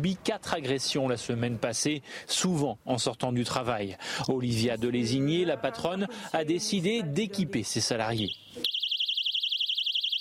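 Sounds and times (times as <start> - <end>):
speech: 0.0 - 8.7
piercing high-pitched personal safety alarm warbling: 8.2 - 10.1.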